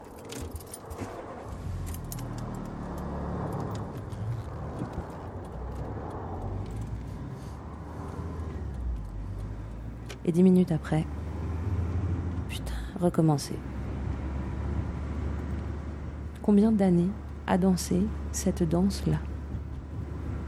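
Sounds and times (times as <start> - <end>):
light jingle of keys: 0.0 - 7.3
car engine rumbling as the car pulls away beside a motorway: 0.0 - 20.4
speech: 10.3 - 11.2, 13.0 - 13.8, 16.5 - 19.3.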